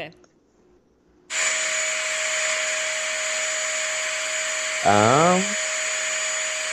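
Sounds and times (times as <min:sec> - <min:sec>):
speech: 0:00.0 - 0:00.2, 0:04.8 - 0:05.6
vacuum cleaner running: 0:01.3 - 0:06.7.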